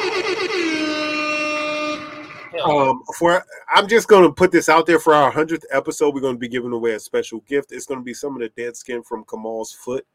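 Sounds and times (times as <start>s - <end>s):
air horn blast: 0.0s - 2.5s
speech: 2.6s - 10.1s.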